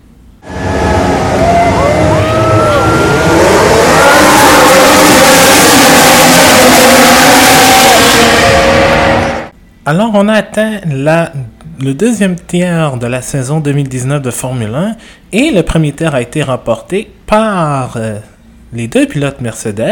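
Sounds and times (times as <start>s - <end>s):
many racing car engines roaring as the pack accelerates: 0.4s - 9.5s
speech: 9.9s - 19.8s.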